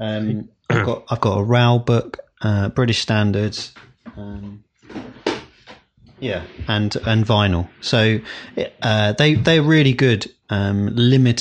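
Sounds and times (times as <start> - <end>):
speech: 0.0 - 5.2, 6.2 - 11.3
drawer sliding open with a rough scraping rush: 4.9 - 5.8.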